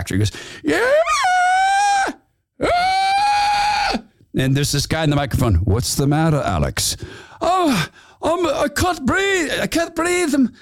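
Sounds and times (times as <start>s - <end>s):
speech: 0.0s - 1.1s, 4.4s - 10.6s
person imitating a man screaming: 0.7s - 4.1s.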